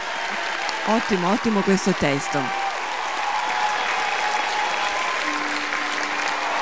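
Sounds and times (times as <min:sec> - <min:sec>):
crowd applause: 0:00.0 - 0:06.6
speech: 0:00.9 - 0:02.6.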